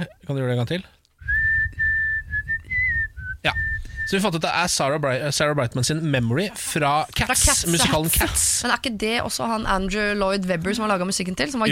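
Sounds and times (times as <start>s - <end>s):
speech: 0.0s - 1.0s, 3.4s - 11.7s
person whistling a slow melody: 1.2s - 4.2s.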